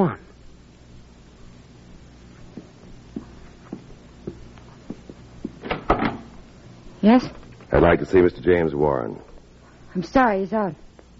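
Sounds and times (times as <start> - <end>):
speech: 0.0 - 0.2, 7.0 - 9.3, 10.0 - 10.8
footsteps crossing a room: 2.3 - 5.7.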